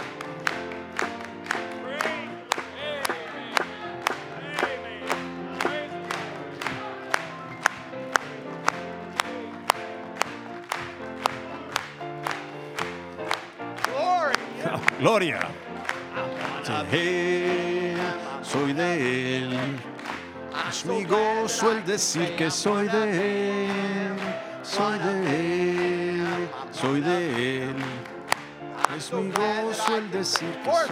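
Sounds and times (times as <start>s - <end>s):
audience clapping in a steady even beat: 0.0s - 30.8s
sustained music with singing voices: 0.0s - 30.8s
speech: 15.0s - 15.6s, 16.7s - 19.9s, 20.8s - 24.0s, 29.1s - 30.8s.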